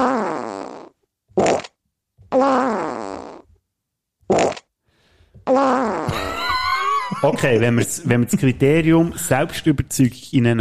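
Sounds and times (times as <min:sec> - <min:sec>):
farts: 0:00.0 - 0:03.5, 0:04.3 - 0:04.7, 0:05.4 - 0:06.2
speech: 0:05.5 - 0:06.2, 0:07.2 - 0:10.6
laughter: 0:06.1 - 0:08.5.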